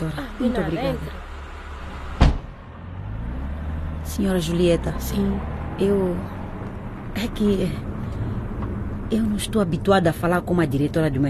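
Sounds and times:
speech: 0.0s - 1.3s, 4.2s - 6.4s, 7.2s - 7.9s, 9.1s - 11.2s
car engine rumbling as the car drives toward the city: 0.0s - 11.2s
car door shutting with a solid thump: 2.2s - 2.6s.

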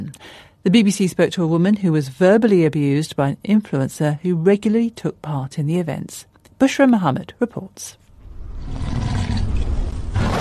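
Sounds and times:
speech: 0.3s - 8.0s
digital gift lion roar sound effect: 8.2s - 10.3s.

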